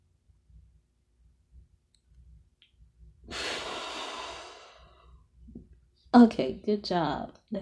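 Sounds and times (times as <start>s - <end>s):
long deep breath drawn in close to the microphone: 3.3s - 5.2s
speech: 6.1s - 7.6s.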